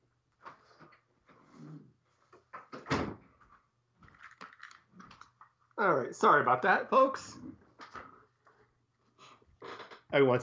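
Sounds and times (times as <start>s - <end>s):
door shutting: 2.6s - 3.2s
speech: 5.8s - 7.5s, 10.1s - 10.4s.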